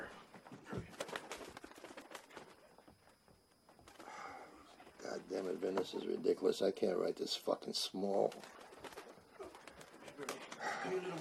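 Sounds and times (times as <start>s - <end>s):
bird wings flapping as someone tries to catch it: 0.4s - 3.1s, 3.7s - 4.4s, 8.1s - 11.1s
speech: 5.2s - 8.6s, 10.9s - 11.1s.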